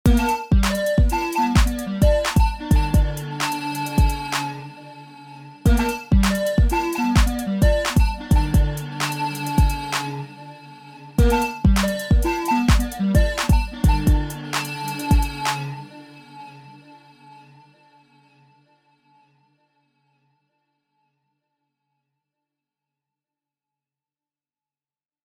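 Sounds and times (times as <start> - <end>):
music beat: 0.1 - 4.7, 5.7 - 10.3, 11.2 - 15.8.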